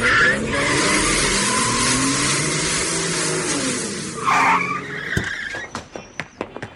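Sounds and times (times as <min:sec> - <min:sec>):
car engine roaring and revving while pulling away: 0:00.0 - 0:05.6
car tires screeching in a skid: 0:00.0 - 0:06.4
thumps and clatters: 0:05.2 - 0:06.7.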